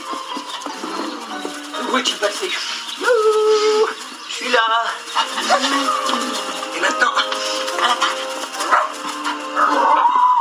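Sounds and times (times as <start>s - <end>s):
speech: 1.9s - 10.3s
dog barking: 8.6s - 10.2s.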